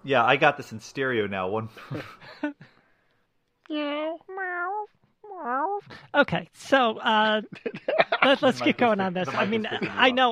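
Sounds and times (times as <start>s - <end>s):
speech: 0.0s - 2.7s, 3.7s - 4.7s, 5.4s - 10.3s
laughter: 1.7s - 2.6s, 7.5s - 10.3s
cat meowing: 3.8s - 5.8s.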